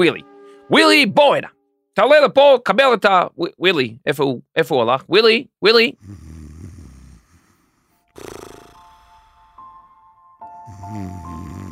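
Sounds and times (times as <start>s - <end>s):
speech: 0.0s - 6.2s, 10.9s - 11.5s
loud rumbling throaty snoring: 6.0s - 9.9s, 10.5s - 11.6s.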